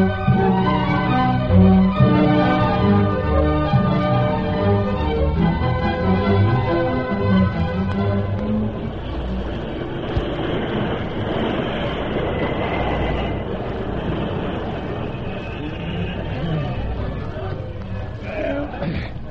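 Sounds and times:
steam train rumbling on the tracks: 0:00.0 - 0:19.2.

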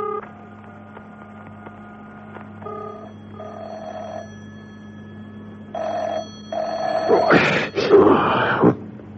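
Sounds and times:
low steady hum: 0:00.0 - 0:09.1
car telephone ringing: 0:02.6 - 0:04.6, 0:05.7 - 0:07.8.

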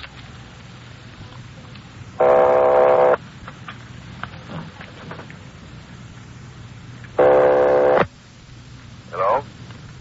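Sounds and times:
hissy phone line: 0:02.2 - 0:03.2, 0:07.2 - 0:08.1
telephone ringback tone: 0:02.2 - 0:03.2.

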